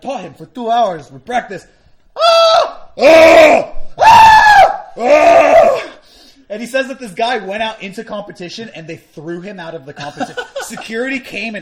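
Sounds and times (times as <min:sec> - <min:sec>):
speech: 0:00.0 - 0:04.1, 0:05.0 - 0:05.9, 0:06.5 - 0:11.6
person screaming at full volume: 0:02.2 - 0:06.0.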